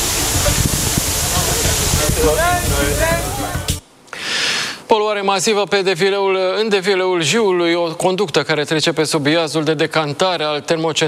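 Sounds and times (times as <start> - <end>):
voices and crowd chatter: 0.0 - 3.8
water cannon spraying water: 0.0 - 3.8
speech: 5.0 - 11.0.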